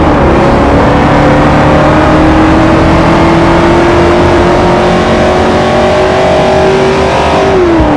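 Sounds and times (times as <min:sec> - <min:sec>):
Camaro ZL1 car engine in third gear: 0:00.0 - 0:07.9.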